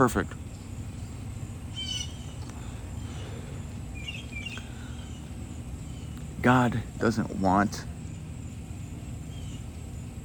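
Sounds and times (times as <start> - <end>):
speech: 0.0 - 0.4, 6.4 - 7.9
steady low outdoor hum: 0.0 - 10.2
bird chirping in a tree at dawn: 0.3 - 10.2.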